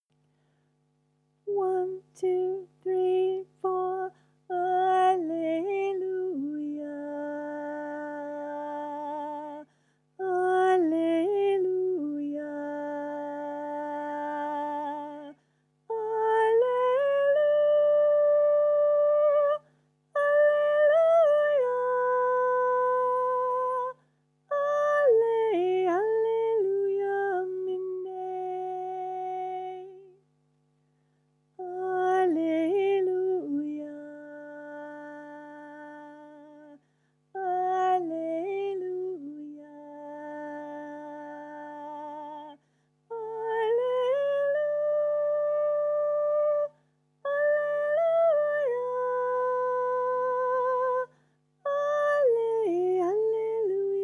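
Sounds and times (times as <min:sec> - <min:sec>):
soprano singing: 0:01.5 - 0:30.2, 0:31.6 - 0:36.8, 0:37.4 - 0:54.0.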